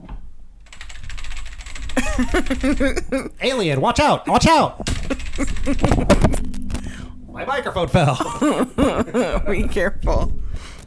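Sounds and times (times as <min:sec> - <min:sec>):
typing on a loud clacking computer keyboard: 0:00.6 - 0:03.0, 0:04.9 - 0:06.4
laughter: 0:02.0 - 0:03.8, 0:04.9 - 0:06.4, 0:08.1 - 0:09.7
speech: 0:02.2 - 0:06.4, 0:07.4 - 0:10.4.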